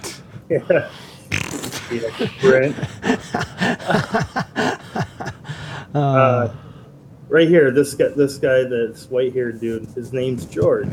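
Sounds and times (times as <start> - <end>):
laughter: 0.0 - 6.5
speech: 0.5 - 1.1, 1.9 - 5.1, 5.9 - 6.6, 7.3 - 10.9
cartoon fart sound effects from a video game: 1.3 - 2.1.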